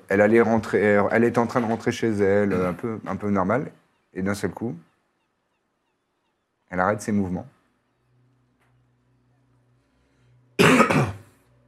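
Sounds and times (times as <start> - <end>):
faint low hum: 0.0 - 11.6
speech: 0.1 - 4.9, 6.7 - 7.6
single loud cough: 2.5 - 2.9, 10.6 - 11.3.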